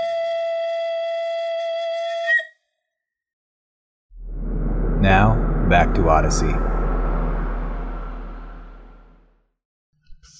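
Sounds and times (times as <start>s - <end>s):
slide whistle holding one bright steady note: 0.0s - 2.6s
low rumbling noise: 4.1s - 9.5s
speech: 5.0s - 6.8s.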